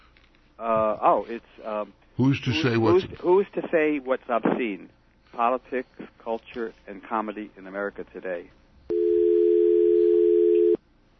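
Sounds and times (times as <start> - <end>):
speech: 0.6 - 8.6
telephone dial tone: 8.9 - 10.8.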